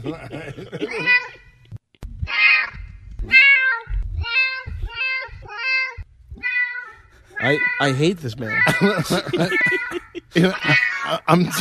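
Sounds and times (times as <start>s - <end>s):
speech: 0.0s - 1.2s, 7.4s - 11.6s
laughter: 0.0s - 1.3s, 8.5s - 11.6s
cat meow run through auto-tune: 2.3s - 7.9s.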